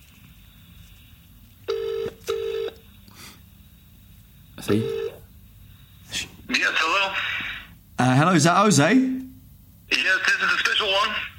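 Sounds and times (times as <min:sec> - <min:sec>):
faint hiss: 0:00.0 - 0:11.3
telephone ringing tone heard down the line as a call is placed: 0:01.7 - 0:02.8, 0:04.7 - 0:05.2
speech: 0:04.6 - 0:05.1, 0:08.2 - 0:09.2.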